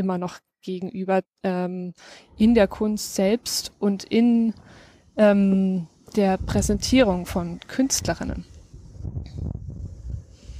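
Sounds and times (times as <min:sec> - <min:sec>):
speech: 0:00.0 - 0:09.6
wind buffeting microphone outdoors: 0:06.1 - 0:10.5.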